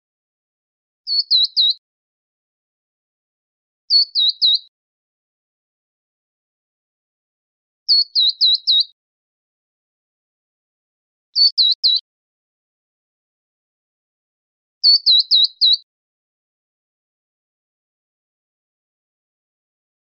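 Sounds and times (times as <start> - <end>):
verdin calling sharp high chipping notes: 7.9 - 8.9, 11.4 - 12.0, 14.9 - 15.8.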